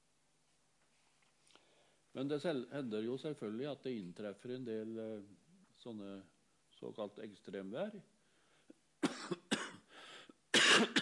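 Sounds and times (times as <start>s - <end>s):
speech: 2.2s - 8.1s
harsh coughing: 9.0s - 9.9s, 10.5s - 11.0s
raspy breath: 9.9s - 10.3s.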